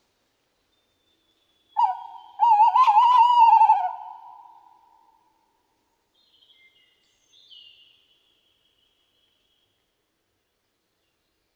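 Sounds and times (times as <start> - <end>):
breeding tawny owl giving a tremulous hoot: 1.8 - 4.8.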